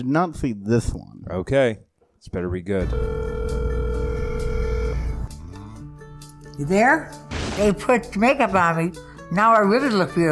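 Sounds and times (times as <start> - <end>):
speech: 0.0 - 3.6, 6.6 - 10.2
electronic telephone tone ringing for a phone call: 2.8 - 5.2.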